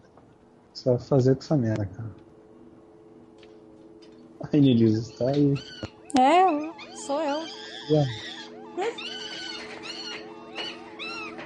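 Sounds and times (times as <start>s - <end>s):
speech: 0.8s - 2.2s, 4.5s - 9.2s
monkey squealing and screeching after being poked: 5.6s - 6.0s, 6.6s - 11.4s.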